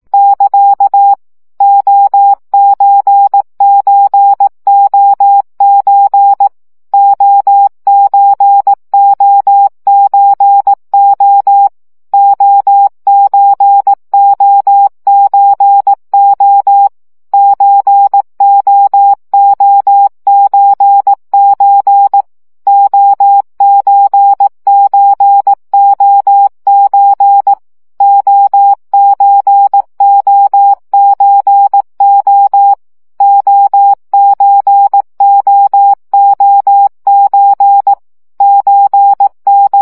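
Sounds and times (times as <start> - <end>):
CW practice signal at 15 baud: 0.2 - 39.8.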